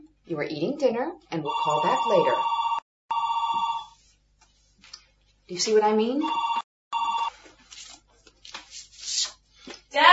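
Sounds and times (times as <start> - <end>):
speech: 0.3 - 2.6, 5.5 - 6.6
electronic telephone ring: 1.5 - 3.9, 6.2 - 7.3.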